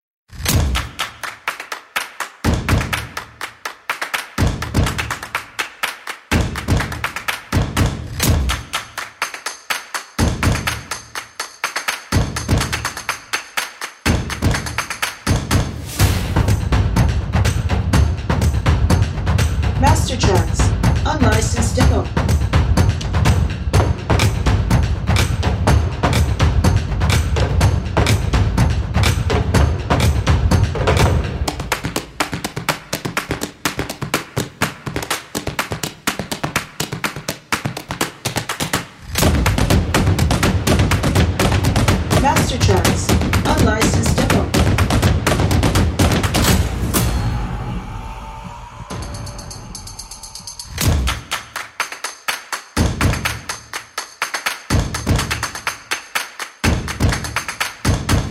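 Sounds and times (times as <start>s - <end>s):
drum beat: 0.4s - 1.5s, 2.4s - 3.6s, 4.2s - 47.2s, 48.9s - 58.3s
clapping: 0.5s - 15.7s, 30.9s - 46.5s, 50.8s - 58.2s.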